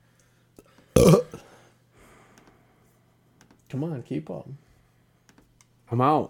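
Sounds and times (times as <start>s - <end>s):
speech: 1.0s - 1.3s, 3.7s - 4.7s, 5.9s - 6.2s
person burping: 1.0s - 1.5s.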